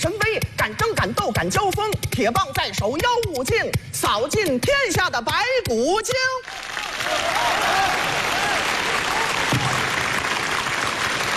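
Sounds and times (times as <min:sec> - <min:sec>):
speech: 0:01.0 - 0:08.9
dense steady applause from a large audience: 0:06.4 - 0:11.3.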